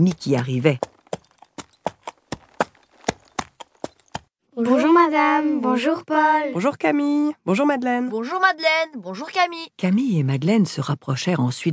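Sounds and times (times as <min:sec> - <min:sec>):
speech: 0:00.0 - 0:00.9, 0:04.6 - 0:11.7
horse hooves clopping on a hard road pulling a carriage: 0:00.0 - 0:04.3.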